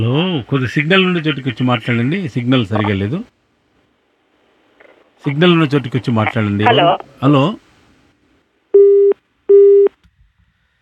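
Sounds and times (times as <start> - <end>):
speech: 0.0 - 3.4, 5.2 - 7.6
phone busy tone after a dropped call: 8.8 - 9.9.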